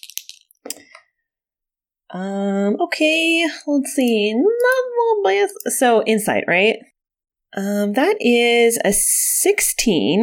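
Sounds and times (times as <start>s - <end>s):
two sparkly dice rattling: 0.0s - 0.6s
dice tumbling onto a hard surface: 0.0s - 0.8s
speech: 2.1s - 6.9s, 7.5s - 10.2s.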